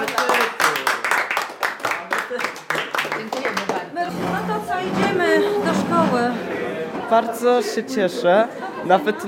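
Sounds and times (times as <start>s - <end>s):
small group clapping: 0.0s - 4.2s
excited voices and overlapping chatter: 3.8s - 9.2s
speech: 7.1s - 9.2s.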